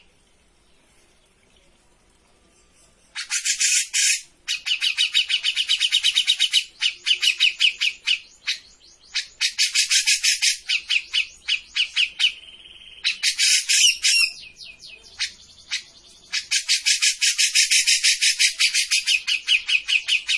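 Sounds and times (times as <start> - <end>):
grey-cheeked bulbul in vigorous song with harsh chatter: 3.1 - 12.4, 13.0 - 14.4, 15.1 - 20.3.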